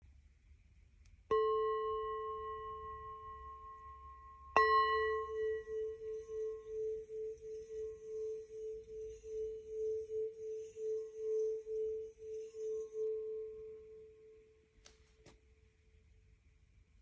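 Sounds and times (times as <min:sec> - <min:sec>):
5 inch gold dimple lingam singing bowl: 0:01.3 - 0:14.8.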